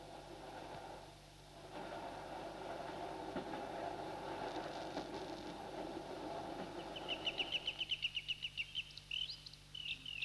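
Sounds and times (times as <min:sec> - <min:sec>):
train rumbling past on a railway line: 0:00.0 - 0:08.6
bird calling in rapid repeated notes: 0:06.7 - 0:10.2.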